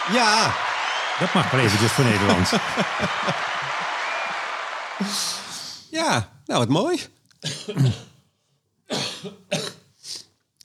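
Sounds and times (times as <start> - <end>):
speech: 0.1 - 3.9, 5.0 - 8.1, 9.2 - 9.7
laughter: 1.1 - 4.0
person coughing: 7.4 - 8.2, 8.9 - 9.9.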